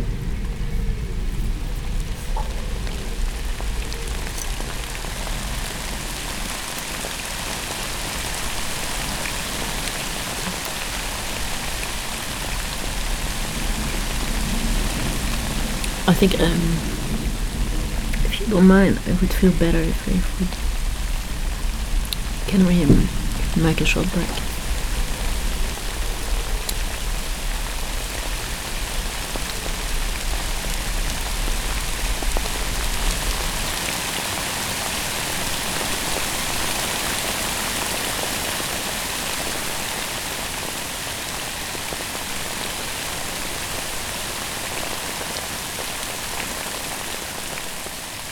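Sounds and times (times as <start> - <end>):
low rumble: 0.0 - 6.6, 11.1 - 33.7
dense rain on a hard surface: 0.0 - 48.2
speech: 16.2 - 16.9, 18.5 - 20.6, 22.5 - 24.4.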